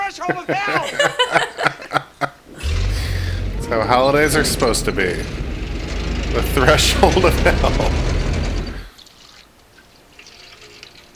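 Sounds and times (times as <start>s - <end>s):
speech: 0.1s - 2.0s, 3.7s - 5.4s, 6.3s - 8.1s
laughter: 0.1s - 2.4s, 6.4s - 8.4s
water from a water dispenser rinsing an eggnog dish: 5.5s - 11.1s
faint water drips: 8.9s - 11.1s.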